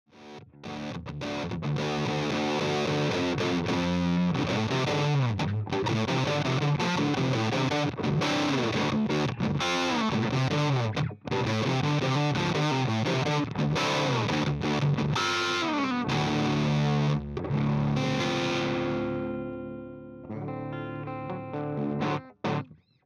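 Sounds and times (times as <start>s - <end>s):
humbucker pickup through normal input: 0.1s - 23.0s.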